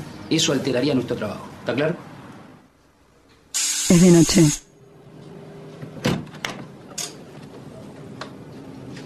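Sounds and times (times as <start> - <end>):
speech: 0.3 - 2.1, 3.9 - 4.7
house door thud: 6.0 - 6.6.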